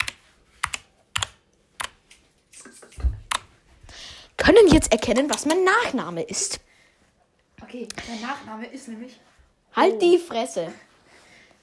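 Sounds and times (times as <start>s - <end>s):
computer keyboard typing: 0.0s - 2.0s
speech: 4.5s - 6.7s, 7.7s - 10.9s.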